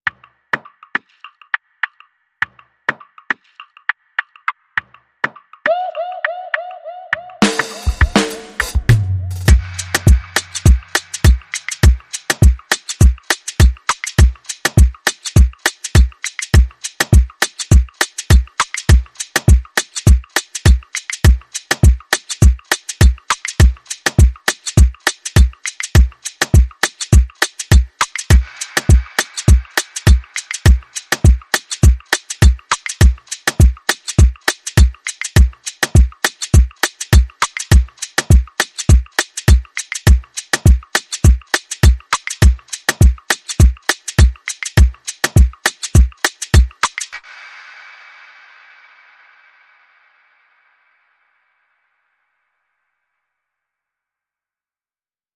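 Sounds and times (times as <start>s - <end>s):
funky drum beat: 7.2s - 47.3s.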